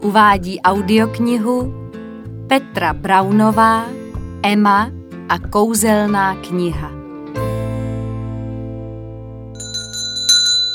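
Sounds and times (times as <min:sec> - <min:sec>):
speech: 0:00.0 - 0:01.8, 0:02.5 - 0:07.0
metal bell above bookshop door jingling: 0:09.6 - 0:10.7.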